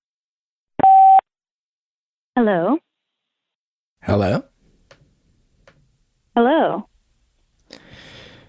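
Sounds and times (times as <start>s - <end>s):
telephone line beep signaling a connected caller: 0.8s - 1.2s
speech: 2.4s - 2.8s, 4.0s - 4.5s, 6.4s - 6.9s.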